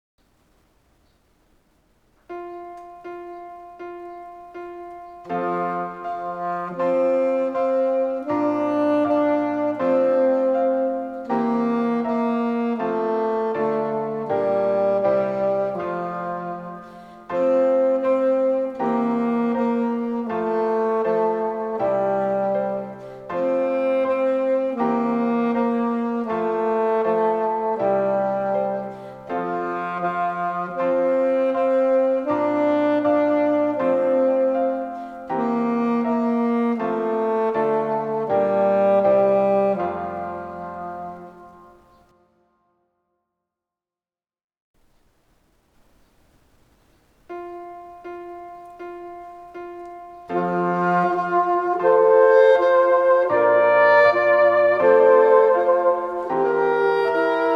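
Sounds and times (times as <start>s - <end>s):
alto saxophone playing a nursery rhyme: 2.3s - 42.1s, 45.8s - 57.5s.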